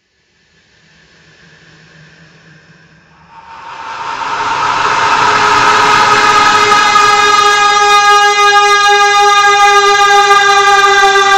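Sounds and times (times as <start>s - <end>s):
stretched slowed-down scream: 3.2s - 11.3s.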